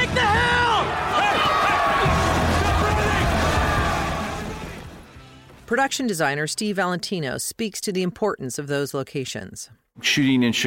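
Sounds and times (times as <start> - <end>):
rioting crowd roaring and shouting in a film scene: 0.0 - 5.0
speech: 5.8 - 10.6.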